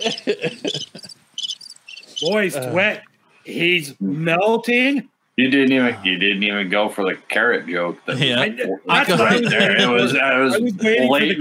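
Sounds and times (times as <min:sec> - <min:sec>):
speech: 0:00.0 - 0:00.6, 0:02.2 - 0:11.3
laughter: 0:00.0 - 0:01.2, 0:08.1 - 0:11.3
crickets chirping: 0:00.0 - 0:02.6.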